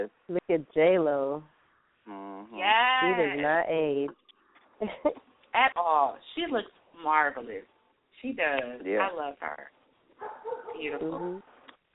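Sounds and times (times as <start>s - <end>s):
speech: 0.0s - 4.2s, 4.8s - 11.5s
dog giving a drawn-out tonal bark: 10.2s - 11.1s
brief faint dog yip: 10.2s - 11.4s.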